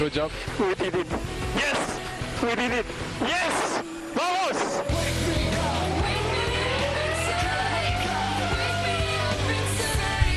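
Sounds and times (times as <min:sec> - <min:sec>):
speech: 0:00.0 - 0:01.8, 0:02.4 - 0:05.4
racing engineers and drivers yelling and cheering over distorted team radio: 0:03.2 - 0:09.5.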